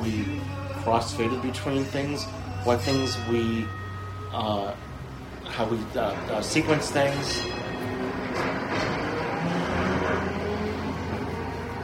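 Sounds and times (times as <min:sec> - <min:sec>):
trolley bus electric motor humming and whining: 0:00.0 - 0:11.8
trolley bus rolling road noise: 0:00.0 - 0:11.8
speech: 0:00.1 - 0:07.7.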